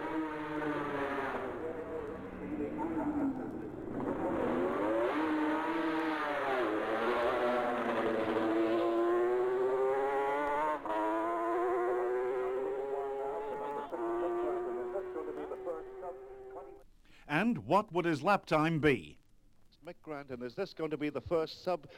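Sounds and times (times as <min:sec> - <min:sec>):
Kawasaki racing motorcycle passing at speed at Governor's Bridge: 0:00.0 - 0:16.8
speech: 0:17.7 - 0:19.2, 0:20.1 - 0:21.9.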